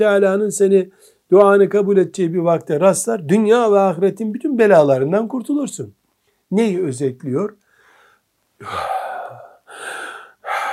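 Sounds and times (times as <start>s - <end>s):
speech: 0.0s - 7.6s, 8.6s - 9.0s
quick sharp breath in: 7.7s - 10.7s.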